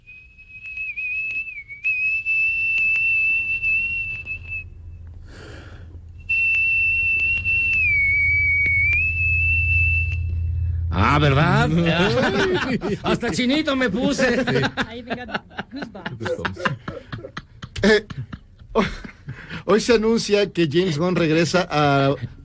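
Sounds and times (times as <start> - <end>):
person whistling a tune: 0.0 - 4.8, 6.2 - 10.9
low rumble: 0.0 - 22.4
speech: 11.2 - 17.0, 19.7 - 22.4
laughter: 11.5 - 19.5.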